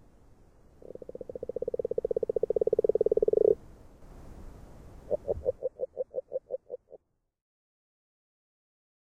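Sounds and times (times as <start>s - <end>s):
agile frog Rana dalmatina croaking: 0.8s - 3.6s, 5.1s - 7.0s.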